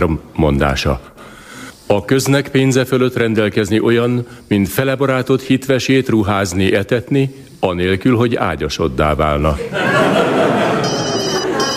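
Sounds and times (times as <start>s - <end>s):
speech: 0.0s - 1.3s, 1.9s - 10.6s
laughter: 9.6s - 11.7s
several telephones ringing at once: 10.6s - 11.7s.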